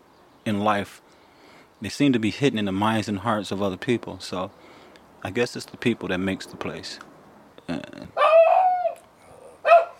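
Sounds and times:
speech: 0:00.5 - 0:01.2, 0:01.8 - 0:07.1, 0:07.7 - 0:08.2
small dog high yip: 0:08.2 - 0:09.9
small puppy barking: 0:08.2 - 0:09.9.

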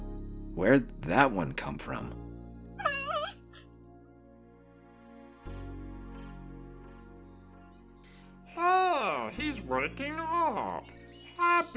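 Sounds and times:
speech: 0:00.6 - 0:02.2, 0:09.8 - 0:11.7
dog whimpering yip: 0:02.8 - 0:03.6.

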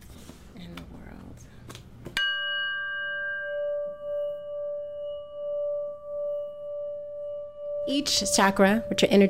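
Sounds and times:
singing bowl struck and ringing: 0:02.2 - 0:09.2
speech: 0:07.9 - 0:09.2.

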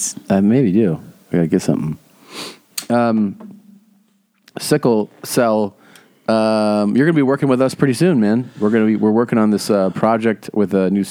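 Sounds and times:
speech: 0:00.0 - 0:02.0, 0:02.9 - 0:03.6, 0:04.6 - 0:11.0
person giving a breathy sniff: 0:02.2 - 0:02.8.

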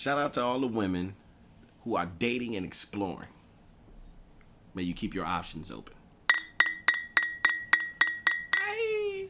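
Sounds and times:
speech: 0:00.0 - 0:01.2, 0:01.8 - 0:03.4, 0:04.8 - 0:06.0
glasses clinking in a toast: 0:06.3 - 0:08.8.

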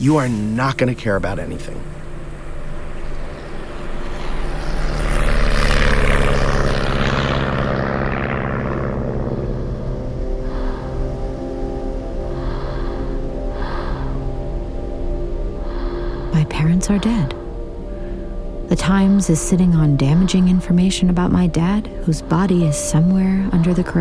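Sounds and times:
speech: 0:00.0 - 0:02.0, 0:16.6 - 0:17.4, 0:18.7 - 0:23.9
propeller aircraft engine drone: 0:01.4 - 0:23.9.

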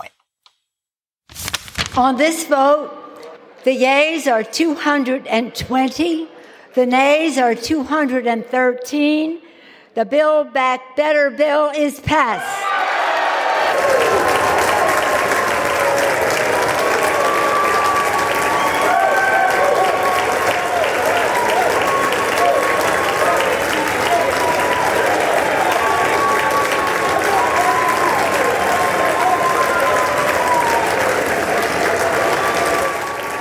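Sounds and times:
speech: 0:02.0 - 0:03.0, 0:03.6 - 0:12.6
lawmakers cheering and whooping in a big hall after a vote: 0:12.4 - 0:33.3
lawmakers clapping in a big hall after a vote: 0:13.1 - 0:33.3.

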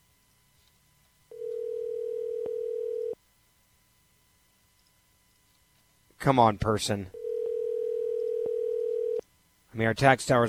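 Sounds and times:
mid-pitched ringback tone through a phone line: 0:01.3 - 0:03.2, 0:07.2 - 0:09.2
speech: 0:06.2 - 0:07.2, 0:09.8 - 0:10.4.

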